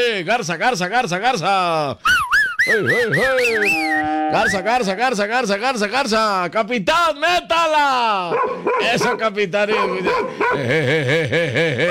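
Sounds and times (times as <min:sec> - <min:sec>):
speech: 0:00.0 - 0:11.8
laughter: 0:01.2 - 0:04.8, 0:09.0 - 0:11.8
small dog barking: 0:08.3 - 0:10.6.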